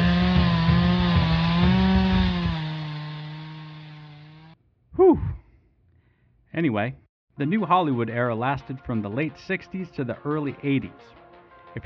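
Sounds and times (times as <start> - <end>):
chainsaw engine revving: 0.0 - 4.6
speech: 6.6 - 11.8.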